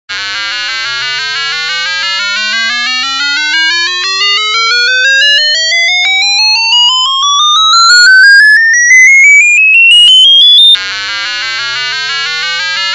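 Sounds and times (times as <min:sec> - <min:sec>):
music box melody: 0:02.4 - 0:10.8.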